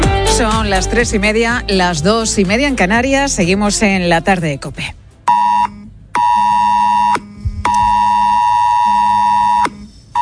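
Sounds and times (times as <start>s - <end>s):
speech: 0.4s - 5.0s
mobile phone emergency alert tone: 5.3s - 10.2s.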